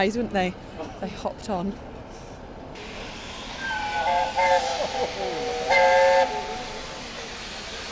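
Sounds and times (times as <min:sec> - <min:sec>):
speech: 0:00.0 - 0:02.2
steam locomotive hissing as it pulls in to a station platform: 0:02.1 - 0:07.9
steam locomotive whistle blasts: 0:02.8 - 0:06.8.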